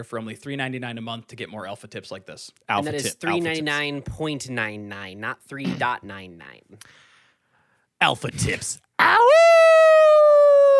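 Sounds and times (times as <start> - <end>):
speech: 0.0 - 7.1, 8.0 - 9.6
person imitating a wolf howl: 9.0 - 10.7.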